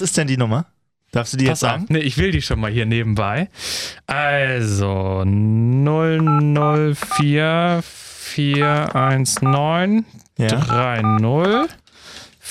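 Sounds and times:
speech: 0.0s - 11.8s
telephone keypad tones dialing an international number to the UK: 6.3s - 7.3s, 8.6s - 9.7s, 10.6s - 11.8s.

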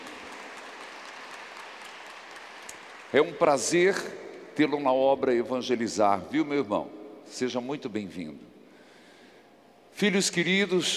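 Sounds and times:
audience applauding: 0.0s - 3.9s
speech: 3.1s - 8.5s, 10.0s - 10.9s.

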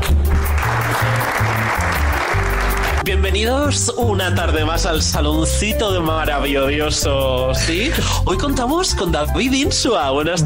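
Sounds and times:
audience applauding for a performer being introduced: 0.0s - 3.1s
speech: 3.2s - 10.4s.

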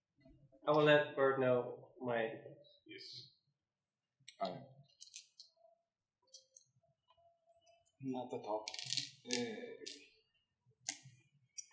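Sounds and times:
speech: 0.7s - 3.3s, 4.4s - 4.8s, 8.0s - 10.1s
six-sided and ten-sided plastic dice clicking as they are set out on a table: 8.6s - 10.0s.

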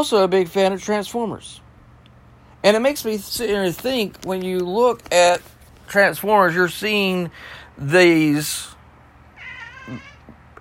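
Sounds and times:
speech: 0.0s - 1.6s, 2.6s - 8.7s, 9.9s - 10.1s
cat giving a drawn-out wavering meow: 9.4s - 10.4s.

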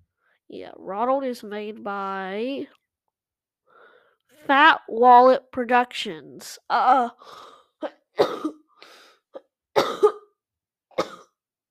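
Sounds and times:
speech: 0.5s - 2.8s, 4.4s - 8.6s
person clearing throat: 7.8s - 8.6s, 9.8s - 11.4s
person coughing: 7.8s - 8.7s, 9.4s - 11.4s.

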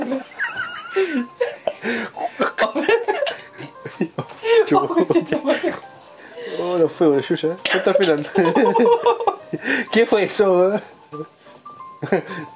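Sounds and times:
several people laughing loudly and wheezing: 0.0s - 5.8s, 7.9s - 9.7s
speech: 1.0s - 1.3s, 7.0s - 11.3s, 12.0s - 12.5s
person choking on swallowed saliva, gasping and coughing: 1.4s - 4.0s, 7.6s - 8.3s.

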